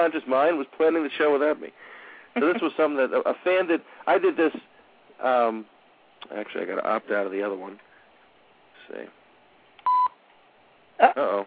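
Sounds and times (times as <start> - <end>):
speech: 0.0 - 7.9, 8.9 - 9.2, 11.0 - 11.4
short electronic beep from a streaming TV app: 9.8 - 10.2.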